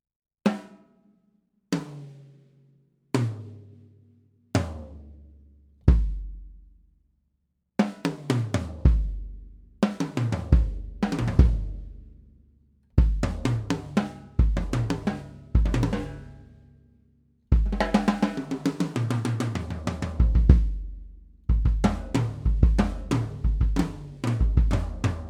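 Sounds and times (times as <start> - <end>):
Sonor Designer Blue Sparkle drums: 0.5 - 0.9, 1.7 - 2.6, 3.2 - 3.9, 4.6 - 6.8, 7.8 - 12.2, 13.0 - 16.5, 17.5 - 25.2.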